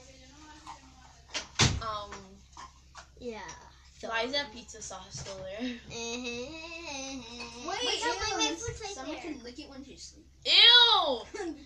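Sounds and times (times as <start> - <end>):
room door shutting with a solid thud: 1.3 - 1.9
speech: 3.2 - 11.6.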